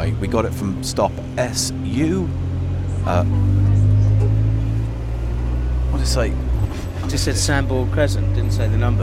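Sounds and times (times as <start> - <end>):
city bus engine drone and rumble heard from inside: 0.0 - 9.0
speech: 0.1 - 3.9, 5.9 - 9.0.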